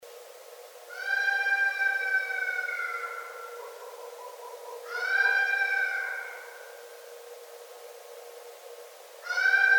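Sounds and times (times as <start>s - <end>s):
red fox crying: 0.9s - 6.8s, 9.2s - 9.7s.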